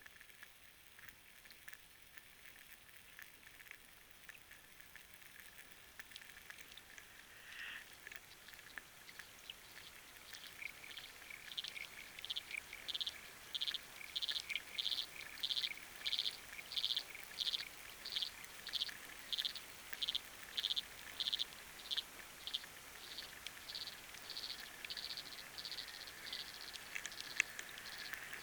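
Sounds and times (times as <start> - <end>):
rain: 0.0 - 28.4
wind: 6.4 - 28.4
steady hiss: 6.6 - 28.4
frogs calling underwater recorded with a hydrophone: 6.8 - 28.4.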